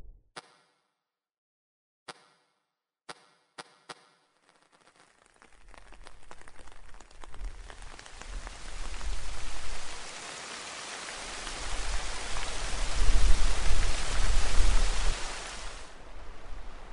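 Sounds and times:
heavy rain: 5.7s - 16.9s.

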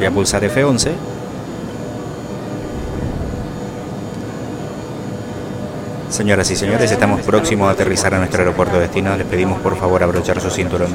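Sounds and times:
speech: 0.0s - 1.2s, 6.1s - 10.9s
airliner jet engine roar in a flight simulator video game: 1.0s - 6.6s.

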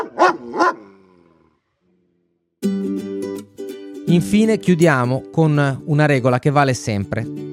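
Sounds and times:
dog barking: 0.0s - 0.9s
speech: 4.1s - 7.5s.

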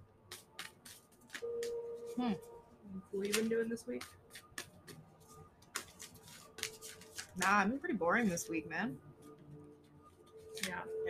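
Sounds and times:
deck of tarot cards being shuffled: 0.3s - 2.5s, 3.2s - 8.4s
speech: 2.2s - 4.2s, 7.4s - 9.1s, 10.7s - 11.0s.

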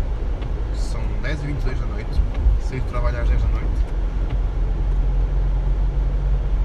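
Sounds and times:
car engine rumble on a town avenue: 0.0s - 6.6s
faint tire roar on a town avenue: 0.0s - 6.6s
speech: 1.3s - 4.0s.

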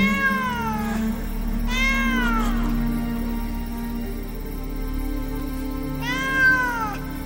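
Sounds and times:
female cat in heat yowling: 0.0s - 1.0s, 1.7s - 2.7s, 6.0s - 7.0s
steady low hum: 0.0s - 7.2s.

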